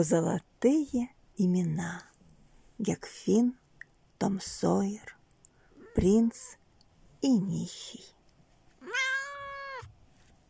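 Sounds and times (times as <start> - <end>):
speech: 0.0 - 2.1, 2.8 - 3.6, 4.2 - 5.2, 6.0 - 6.6, 7.2 - 8.2
cat meowing: 8.8 - 9.9.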